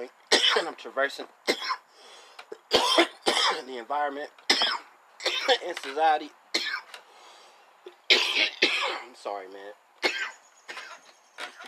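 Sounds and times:
speech: 0.0s - 1.4s, 3.6s - 6.4s, 8.4s - 9.8s
harsh forceful coughing and throat clearing: 0.3s - 0.7s, 1.5s - 1.8s, 2.5s - 3.6s, 4.5s - 5.7s, 6.6s - 6.9s, 8.1s - 9.1s, 10.0s - 11.6s.

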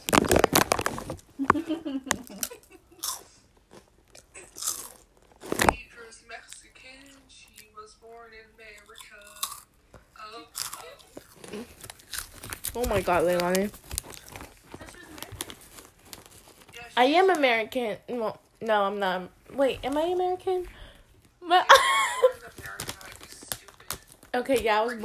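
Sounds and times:
crunching of crispy flaming hot Cheetos snack chips: 0.0s - 5.8s, 8.7s - 9.8s, 10.4s - 16.8s, 22.2s - 25.0s
wet chewing: 0.0s - 5.8s, 6.4s - 7.8s, 8.6s - 16.8s
laughter: 1.4s - 3.1s, 21.6s - 22.4s
speech: 12.8s - 13.8s, 17.0s - 20.8s, 21.5s - 21.9s, 24.4s - 25.0s.

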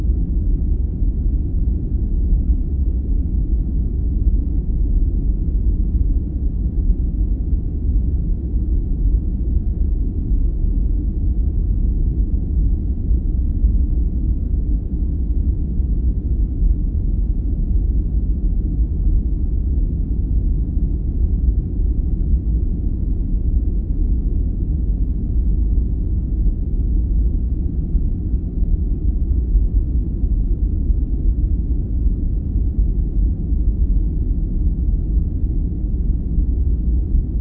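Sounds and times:
deep constant rumble of white noise: 0.0s - 37.3s.

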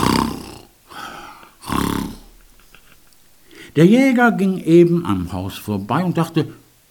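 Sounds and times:
wolf snoring loudly asleep in bed: 0.0s - 3.8s
quiet trailing breath: 0.9s - 3.8s
speech: 3.8s - 6.6s.

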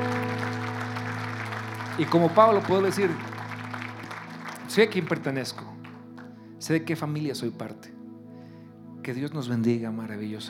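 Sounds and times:
low sustained organ or keyboard chord: 0.0s - 4.7s
audience applause: 0.0s - 6.3s
speech: 2.0s - 3.3s, 4.8s - 5.7s, 6.6s - 8.0s, 9.0s - 10.4s.

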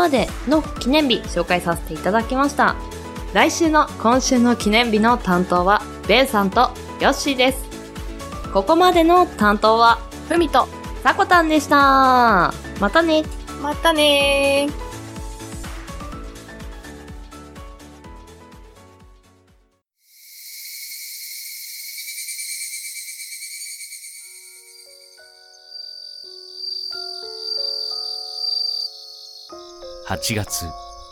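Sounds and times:
music: 0.0s - 19.8s, 24.6s - 31.1s
speech: 0.1s - 7.6s, 8.5s - 14.8s, 30.1s - 30.8s
cicadas buzzing: 20.1s - 31.1s.

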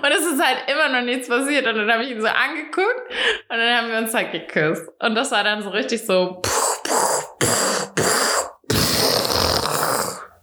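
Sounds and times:
speech: 0.0s - 7.6s
voice making rough breathy bursts imitating an explosion: 6.4s - 10.3s.

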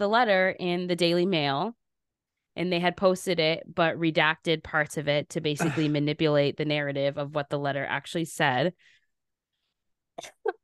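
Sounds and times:
speech: 0.0s - 1.8s, 2.6s - 9.0s, 10.2s - 10.6s
person coughing: 5.6s - 6.0s, 10.2s - 10.6s.

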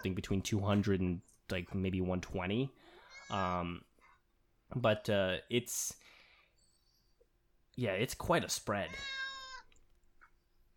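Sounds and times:
speech: 0.0s - 3.9s, 4.7s - 6.2s, 7.8s - 9.2s
cat on the floor meowing: 8.8s - 9.8s.

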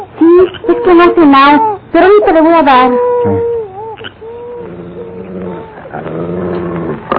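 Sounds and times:
speech: 0.8s - 3.5s
dog growling: 2.8s - 7.1s.

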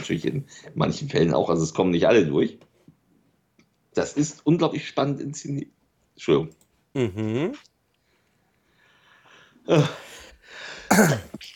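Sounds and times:
speech: 0.0s - 2.7s, 4.0s - 7.7s, 9.6s - 11.5s
sneeze: 10.9s - 11.5s.

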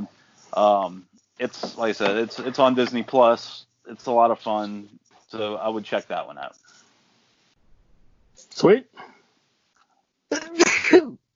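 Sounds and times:
speech: 0.6s - 6.6s, 8.6s - 9.2s
sneeze: 10.3s - 11.2s.

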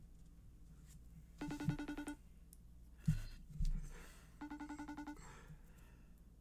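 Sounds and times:
FaceTime call ringtone with bright pulsing chimes: 1.4s - 2.2s, 4.4s - 5.2s.

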